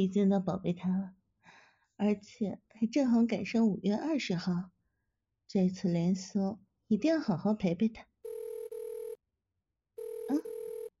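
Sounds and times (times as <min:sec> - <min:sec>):
speech: 0:00.0 - 0:04.7, 0:05.5 - 0:08.1
telephone ringing with an incoming call: 0:08.2 - 0:09.2, 0:10.0 - 0:10.9.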